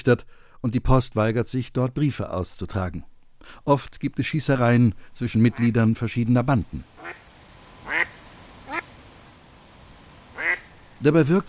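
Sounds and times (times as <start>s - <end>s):
speech: 0.0s - 7.2s, 11.0s - 11.4s
nasal duck quacks on a pond: 7.0s - 7.2s, 7.8s - 8.9s, 10.3s - 10.8s.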